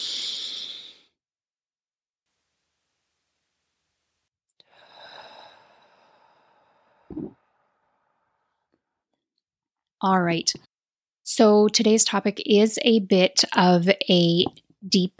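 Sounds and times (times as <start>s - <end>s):
deep breath in and out: 0.0s - 1.2s, 4.6s - 8.7s
speech: 7.1s - 7.4s, 10.0s - 10.7s, 11.3s - 15.1s.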